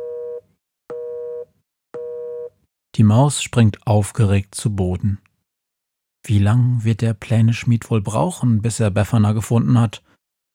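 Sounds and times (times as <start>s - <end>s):
telephone busy tone after call ends: 0.0s - 2.5s
speech: 3.0s - 5.2s, 6.2s - 10.1s.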